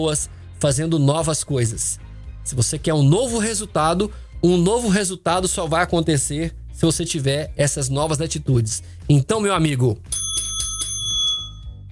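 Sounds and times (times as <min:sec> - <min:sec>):
speech: 0:00.0 - 0:10.4
bell ringing: 0:10.1 - 0:11.9.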